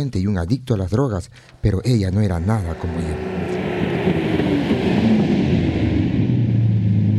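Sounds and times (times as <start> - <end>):
speech: 0.0 - 4.2
Chevy car engine revving while pulling in: 2.1 - 7.1.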